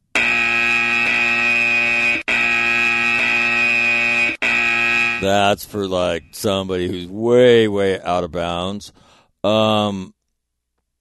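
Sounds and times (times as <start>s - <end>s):
loud harsh electronic buzzer: 0.0s - 5.6s
speech: 5.2s - 10.2s.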